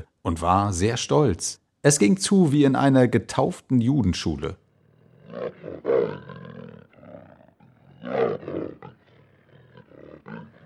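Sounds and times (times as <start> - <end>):
speech: 0.2 - 4.6, 5.3 - 6.5
lion roaring: 4.7 - 10.6.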